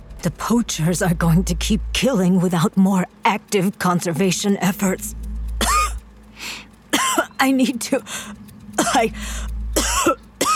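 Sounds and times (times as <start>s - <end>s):
low steady hum: 0.0s - 10.5s
speech: 0.2s - 5.2s, 7.4s - 9.5s
person clearing throat: 5.6s - 6.0s, 9.8s - 10.5s
person coughing: 5.6s - 6.0s, 7.0s - 7.3s, 8.8s - 9.2s, 9.8s - 10.5s.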